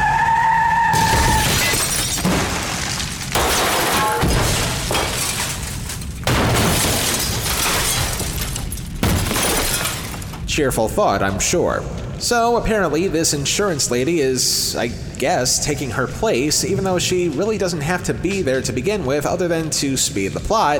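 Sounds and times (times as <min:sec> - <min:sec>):
car tires squealing in a brief skid: 0:00.0 - 0:01.5
loud car crash: 0:00.9 - 0:10.4
shattering glass: 0:01.0 - 0:10.5
crunching debris: 0:01.0 - 0:10.9
speech: 0:10.6 - 0:20.7.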